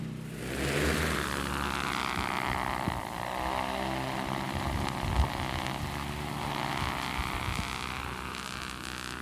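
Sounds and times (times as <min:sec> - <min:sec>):
large drone launching for drone ignitions on a fire, propellers whirring: 0:00.0 - 0:09.2.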